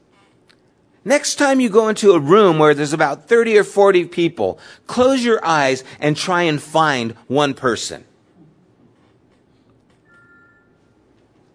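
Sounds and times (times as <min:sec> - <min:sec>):
speech: 0:01.0 - 0:08.1
thin two-pitch electronic phone beep: 0:10.0 - 0:11.0.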